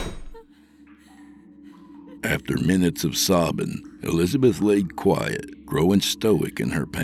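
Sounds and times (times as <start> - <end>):
heavy door shutting with a deep thud: 0.0 - 0.4
speech: 2.2 - 7.0.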